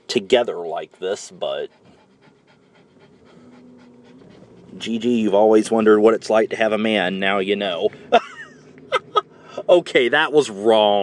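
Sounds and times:
dogs panting: 0.0s - 8.1s
speech: 0.1s - 1.9s, 4.7s - 8.4s, 9.6s - 11.0s
laughter: 8.0s - 9.7s.

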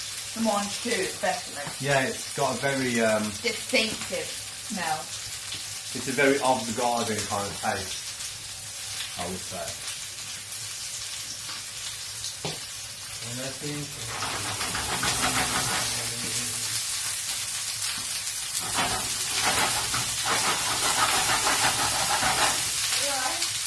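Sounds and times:
vegetables sizzling and crackling in a frying pan: 0.0s - 23.6s
speech: 0.4s - 5.2s, 5.9s - 8.0s, 9.2s - 9.9s, 13.2s - 16.0s
scraping and stirring in a shaken frying pan: 13.9s - 23.3s.

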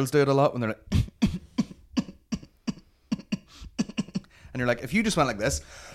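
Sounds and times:
speech: 0.0s - 1.0s, 4.6s - 5.9s
voice imitating small dry coughs: 0.9s - 4.4s.

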